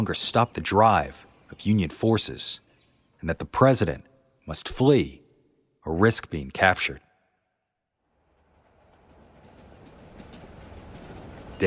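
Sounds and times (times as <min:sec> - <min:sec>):
speech: 0:00.0 - 0:02.6, 0:03.2 - 0:05.2, 0:05.8 - 0:07.0
train rumbling on rails: 0:08.1 - 0:11.6
train wheels clickety-clack on rails: 0:08.4 - 0:11.6.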